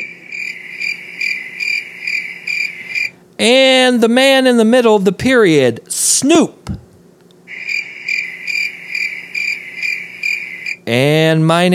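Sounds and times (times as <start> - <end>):
crickets chirping: 0.0 - 3.2, 7.5 - 10.9
speech: 3.4 - 6.8, 10.9 - 11.7.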